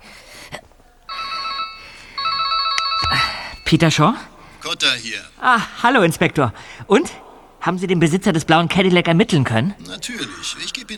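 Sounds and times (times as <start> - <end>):
mobile phone ringing with a bright warbling electronic ringtone: 1.1 - 4.0
speech: 3.7 - 10.9.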